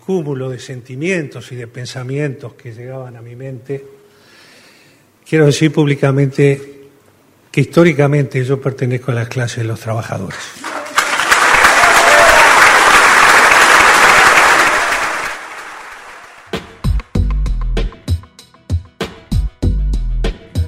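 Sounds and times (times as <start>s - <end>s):
speech: 0.1s - 4.0s, 5.3s - 6.7s, 7.6s - 10.7s
large audience applauding after a speech: 10.6s - 16.5s
punchy rhythmic music beats: 16.5s - 20.6s.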